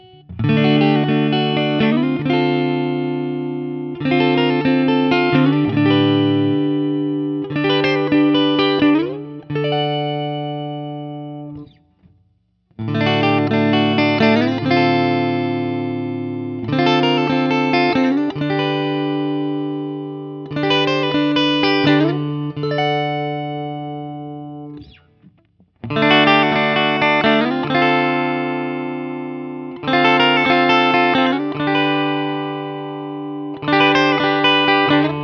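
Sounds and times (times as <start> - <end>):
Guild Starfire I SC electric guitar through ODS100 amplifier: 0.0 - 35.2.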